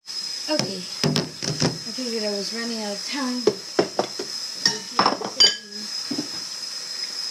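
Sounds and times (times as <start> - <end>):
speech: 0.5 - 1.2, 2.0 - 3.7
bowls being handled, clinking: 4.6 - 5.8.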